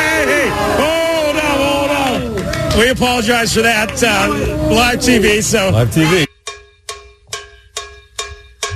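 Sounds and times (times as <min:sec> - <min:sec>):
crowd screaming and cheering outdoors in the streets of South Philly, Philadelphia: 0:00.0 - 0:06.3
speech: 0:02.8 - 0:06.3.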